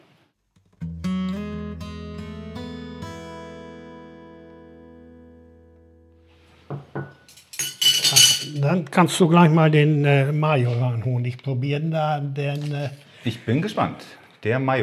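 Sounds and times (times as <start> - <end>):
glass jar and cutlery clinking: 7.3 - 8.6
sticks rattling and clattering as they are fetched to sample from a jar: 7.3 - 8.6
speech: 8.6 - 14.8.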